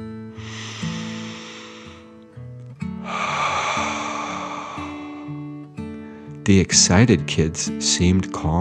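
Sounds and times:
deep breath in and out as a calming breathing exercise: 0:00.3 - 0:06.4
speech: 0:06.4 - 0:08.5.

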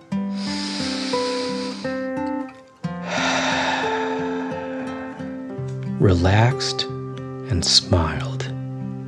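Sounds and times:
soft gentle music: 0:00.0 - 0:09.0
deep breath in and out: 0:00.3 - 0:02.1, 0:03.0 - 0:05.7
speech: 0:06.0 - 0:06.9, 0:07.5 - 0:08.3.

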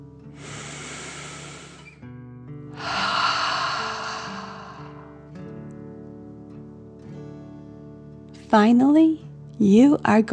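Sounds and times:
person breathing in and out during a relaxation exercise: 0:00.3 - 0:02.0, 0:02.8 - 0:05.4
speech: 0:08.5 - 0:10.3.

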